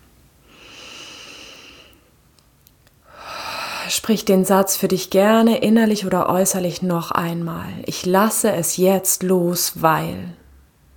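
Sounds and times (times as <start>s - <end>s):
deep slow breathing during a relaxation exercise: 0.4s - 2.1s, 3.0s - 3.9s
speech: 3.9s - 10.4s.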